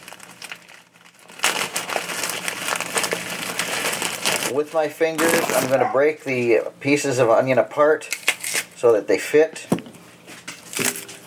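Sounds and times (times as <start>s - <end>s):
plastic bag being opened, rustling and crinkling: 0.0s - 6.1s
speech: 4.5s - 8.2s, 8.8s - 9.8s.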